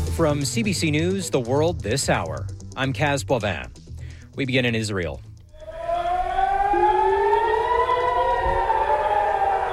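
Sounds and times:
speech: 0:00.2 - 0:05.3
civil defense air raid siren wailing in city: 0:05.5 - 0:09.7.

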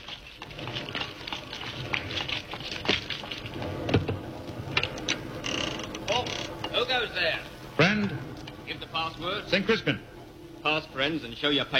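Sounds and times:
heavy rain pelting down: 0:00.0 - 0:11.7
speech: 0:09.0 - 0:11.7.

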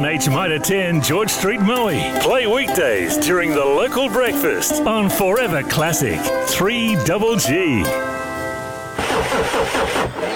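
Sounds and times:
speech: 0:00.0 - 0:08.2
car engine starter motor cranking but failing to start: 0:09.0 - 0:10.3.

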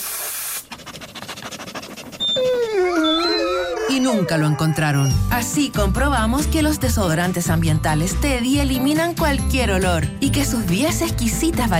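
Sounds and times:
short hiss: 0:00.0 - 0:00.6
dogs sniffing in search of a hidden smelly bone: 0:00.6 - 0:05.0
dog high-pitched whimpering whine: 0:02.1 - 0:05.3
speech: 0:04.0 - 0:11.7.

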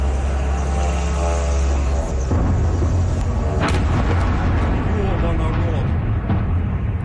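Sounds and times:
drone engine buzzing overhead: 0:00.0 - 0:07.0
rumbling noise: 0:01.7 - 0:07.0
heavy impact boom of a drone slamming into an apartment building: 0:02.2 - 0:07.0.

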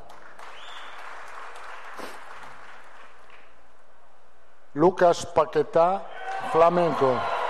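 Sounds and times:
large stadium crowd applauding: 0:00.0 - 0:03.5, 0:06.2 - 0:07.4
speech: 0:04.8 - 0:07.3.

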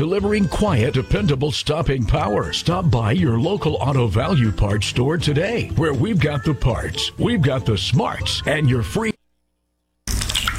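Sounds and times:
speech: 0:00.0 - 0:09.1
water dripping from a leaking flat roof: 0:10.1 - 0:10.5.

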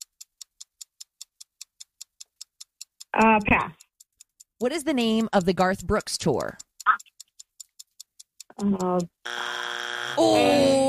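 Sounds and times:
sharp timer ticks: 0:00.0 - 0:10.1
speech: 0:03.1 - 0:03.8, 0:04.6 - 0:06.6, 0:08.6 - 0:09.4, 0:10.2 - 0:10.7
harsh game-show buzzer: 0:09.2 - 0:10.7.

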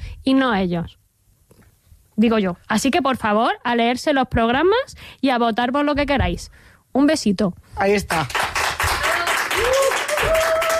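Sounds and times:
speech: 0:00.2 - 0:01.0, 0:02.2 - 0:08.5
audience applause: 0:08.1 - 0:10.7.

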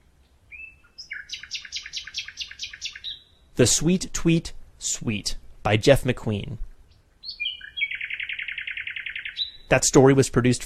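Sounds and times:
male nightingale singing at night: 0:00.0 - 0:04.2, 0:06.8 - 0:10.2
speech: 0:03.6 - 0:06.7, 0:09.7 - 0:10.6.

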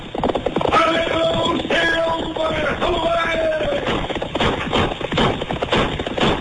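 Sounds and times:
hoofbeats of a fiery horse galloping in an old radio western: 0:00.0 - 0:06.3
high wavering horse whinny: 0:00.7 - 0:04.0.

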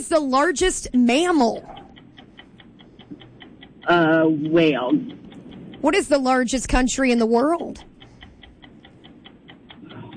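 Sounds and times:
speech: 0:00.0 - 0:01.8, 0:03.9 - 0:05.2, 0:05.8 - 0:07.9
low hum: 0:00.0 - 0:10.1
quiz game countdown timer ticking: 0:00.0 - 0:10.1.

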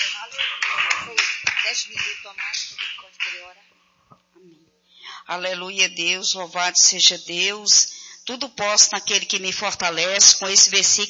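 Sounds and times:
crowd clapping in rhythm: 0:00.0 - 0:03.6
voices calling out: 0:00.0 - 0:03.8
speech: 0:00.2 - 0:03.8, 0:05.2 - 0:11.0.

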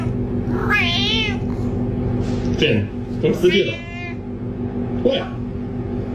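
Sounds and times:
domestic cat meowing: 0:00.0 - 0:01.5, 0:03.6 - 0:04.2
steady low hum: 0:00.0 - 0:06.1
speech: 0:02.6 - 0:03.9, 0:05.0 - 0:05.4.

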